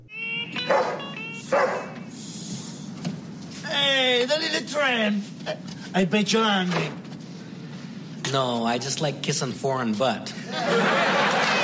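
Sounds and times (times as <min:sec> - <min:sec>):
quiet hiss: 0:00.3 - 0:11.0
dog barking for food: 0:00.7 - 0:02.0
speech: 0:04.2 - 0:07.0, 0:08.3 - 0:11.0
laughter: 0:10.4 - 0:11.6.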